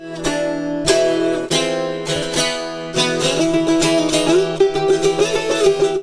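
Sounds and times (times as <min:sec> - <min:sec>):
musical riff: 0:00.0 - 0:06.0.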